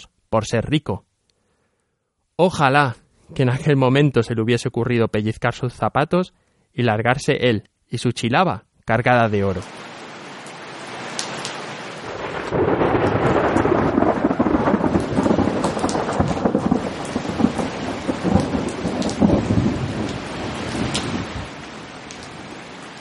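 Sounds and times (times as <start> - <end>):
speech: 0.0 - 1.1, 2.4 - 9.9
steady roar of heavy rain: 9.6 - 22.9
deep rumbling thunder: 12.0 - 21.6.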